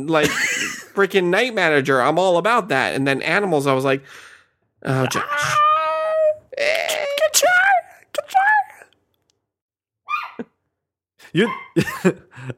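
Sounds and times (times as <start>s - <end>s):
speech: 0.0s - 5.6s, 11.3s - 12.5s
laughter: 0.2s - 1.0s, 11.3s - 12.5s
person speaking in a high pitch: 4.9s - 8.9s
dog whining and howling: 10.1s - 10.4s, 11.4s - 11.8s.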